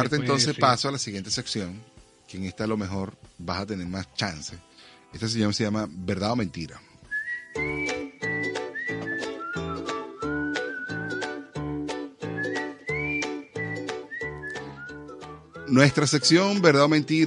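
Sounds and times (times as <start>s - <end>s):
speech: 0.0s - 6.9s, 7.6s - 8.0s, 15.7s - 17.2s
rhythmic backing music with punchy beats: 0.0s - 17.2s
person whistling a bright melody: 7.1s - 16.6s.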